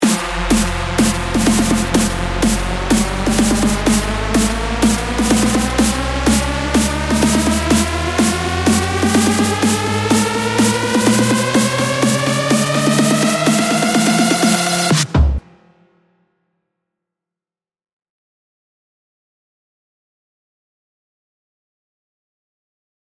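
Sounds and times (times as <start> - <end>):
riser sound effect: 0.0 - 15.0.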